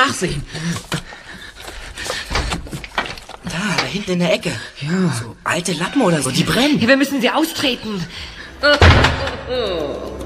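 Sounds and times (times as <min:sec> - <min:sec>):
speech: 0:00.0 - 0:01.0, 0:03.9 - 0:10.1
heavy door slamming shut: 0:08.8 - 0:09.5.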